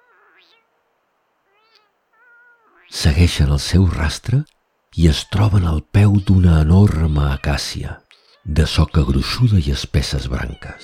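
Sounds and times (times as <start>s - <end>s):
small white-muzzled kitten meowing in an acacia tree: 0.0s - 0.7s, 1.5s - 3.0s, 6.9s - 8.6s
speech: 3.2s - 10.8s.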